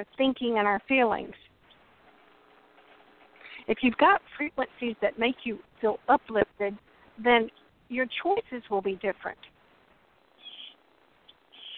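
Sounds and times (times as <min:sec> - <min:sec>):
speech: 0:00.0 - 0:01.4, 0:03.7 - 0:09.5
quiet hiss: 0:00.0 - 0:11.7
bird calling overhead outdoors in the Keys: 0:10.4 - 0:11.7.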